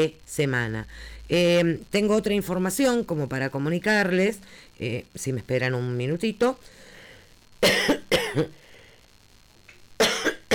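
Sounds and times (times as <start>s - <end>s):
speech: 0.0s - 6.8s, 7.6s - 8.6s
person with a sore throat clearing throat: 7.6s - 8.6s, 10.0s - 10.5s
person with a sore throat coughing: 7.6s - 8.6s, 10.0s - 10.5s.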